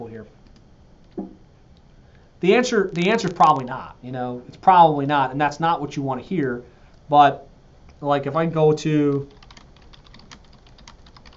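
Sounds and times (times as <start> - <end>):
speech: 0.0 - 0.4, 2.4 - 9.4
typing a search query on a computer keyboard: 9.1 - 11.3.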